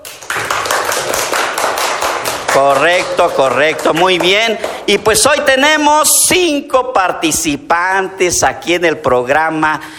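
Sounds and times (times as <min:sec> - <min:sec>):
group applause greeting mothers: 0:00.0 - 0:05.8
speech: 0:02.6 - 0:09.9.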